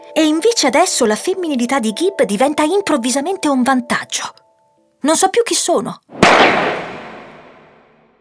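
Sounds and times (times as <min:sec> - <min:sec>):
speech: 0:00.2 - 0:04.4, 0:05.0 - 0:07.0
starting pistol shot outdoors or in a large open space: 0:06.1 - 0:08.1.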